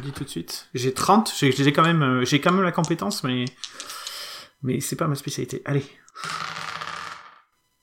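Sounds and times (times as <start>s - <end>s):
speech: 0.0s - 4.0s, 4.6s - 6.4s
dice rolled for a stealth check clattering across a hard surface: 1.5s - 4.2s, 6.2s - 7.4s.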